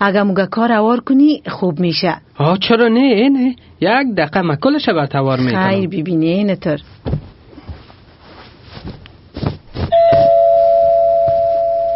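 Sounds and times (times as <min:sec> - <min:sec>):
speech: 0:00.0 - 0:07.3
soft rustles: 0:06.8 - 0:10.5
footsteps: 0:06.9 - 0:10.4
doorbell ringing: 0:09.9 - 0:11.9.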